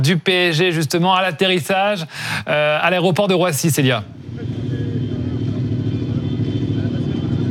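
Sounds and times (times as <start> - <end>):
speech: 0.0 - 4.6
several scooter and motorbike engines idling and revving in a crowded outdoor spot: 4.0 - 7.4.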